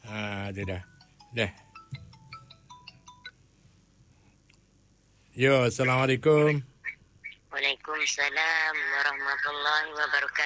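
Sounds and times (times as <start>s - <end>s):
phone electronic melody ringtone: 0.0s - 3.4s
low hum: 0.0s - 10.4s
speech: 0.5s - 1.6s, 5.4s - 6.7s, 8.0s - 10.4s.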